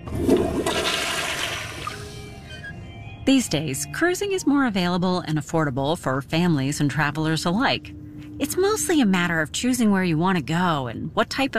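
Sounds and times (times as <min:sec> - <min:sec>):
toilet flushing: 0:00.0 - 0:02.4
speech: 0:03.3 - 0:11.5.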